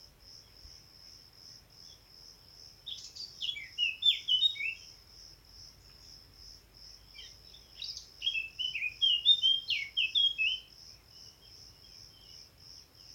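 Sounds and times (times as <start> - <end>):
Eurasian blackcap Sylvia atricapilla singing: 2.9 - 4.8, 7.2 - 10.7.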